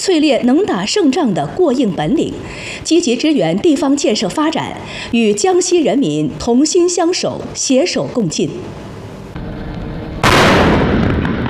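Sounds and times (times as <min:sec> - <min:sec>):
speech: 0:00.0 - 0:08.9
artillery blast during a live-fire drill: 0:10.1 - 0:11.4.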